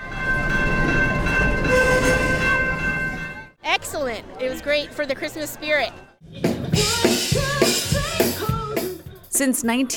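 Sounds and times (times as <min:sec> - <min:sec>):
holiday train rolling into town: 0:00.0 - 0:03.5
high metallic squealing of train: 0:01.6 - 0:03.2
speech: 0:04.1 - 0:08.8, 0:09.4 - 0:09.9.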